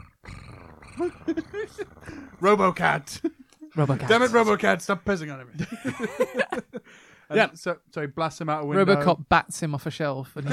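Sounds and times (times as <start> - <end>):
voice imitating a cat purring: 0.0 - 3.2
speech: 1.0 - 10.5.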